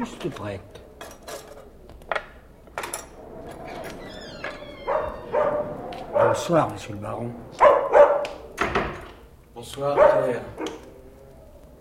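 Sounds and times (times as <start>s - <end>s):
speech: 0.0s - 0.8s, 6.3s - 7.6s, 9.6s - 10.7s
faint clattering: 0.0s - 9.4s
dog barking: 4.9s - 6.5s, 7.6s - 8.4s, 9.8s - 10.8s.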